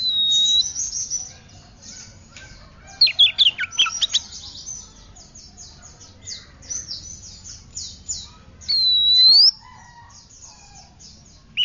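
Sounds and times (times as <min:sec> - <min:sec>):
Oriental magpie-robin sharp whistled notes: 0:00.0 - 0:01.1, 0:08.7 - 0:09.6
Oriental magpie-robin softer repeated high scratchy phrases: 0:00.0 - 0:09.6, 0:10.2 - 0:11.6.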